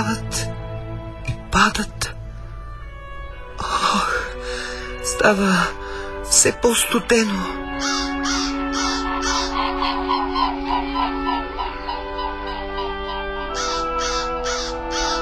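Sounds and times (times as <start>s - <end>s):
steady sustained musical tone: 0.0s - 15.2s
speech: 1.6s - 2.1s, 5.2s - 8.1s
flock of birds with harsh honking and cawing cries: 7.7s - 15.2s.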